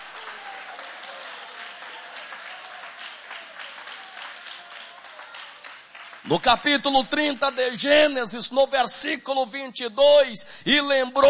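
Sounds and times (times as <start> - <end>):
church audience applauding: 0.0 - 7.8
speech: 6.3 - 11.2.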